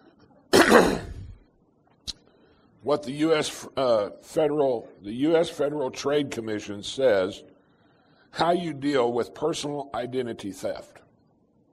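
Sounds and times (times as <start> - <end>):
person coughing after swallowing a cough drop: 0.5 - 1.4
speech: 0.7 - 1.1, 2.8 - 7.5, 8.3 - 11.0.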